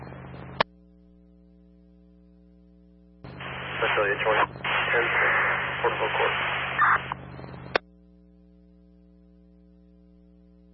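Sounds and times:
low steady electronic hum: 0.0s - 10.7s
radio static: 3.3s - 7.8s
speech: 4.0s - 7.1s.

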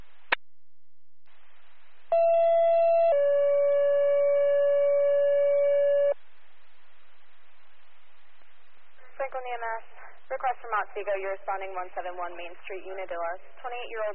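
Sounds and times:
faint radio hiss: 1.3s - 4.0s, 4.9s - 14.1s
speech: 10.5s - 14.1s
radio click: 12.8s - 14.1s.

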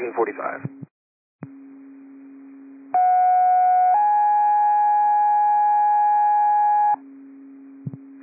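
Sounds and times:
speech: 0.2s - 0.8s
two-tone fire dispatch radio paging test signal: 3.0s - 7.0s.

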